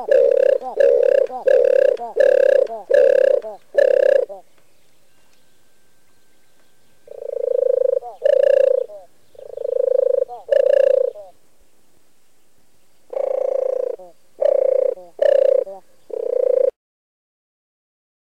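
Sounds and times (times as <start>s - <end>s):
European turtle dove giving soft throaty purrs: 0.0s - 4.5s, 7.0s - 11.4s, 13.1s - 16.8s.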